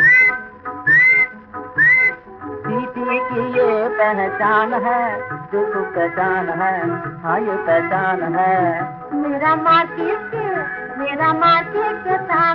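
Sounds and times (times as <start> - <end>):
whistling: 0.0 - 2.2
dense sustained tonal musical bed: 0.0 - 12.5
speech: 4.0 - 10.4, 11.0 - 12.5.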